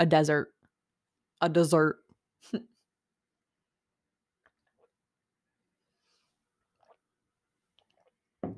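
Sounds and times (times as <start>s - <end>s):
speech: 0.0s - 0.6s, 1.4s - 2.7s
person sipping water: 4.4s - 5.2s, 5.9s - 8.4s
gulping swallows of water: 6.6s - 8.3s.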